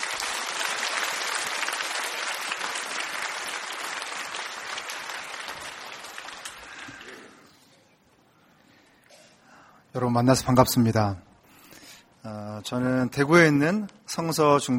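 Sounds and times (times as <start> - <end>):
large audience applause welcoming a speaker: 0.0 - 7.5
speech: 10.0 - 11.3, 12.6 - 14.7.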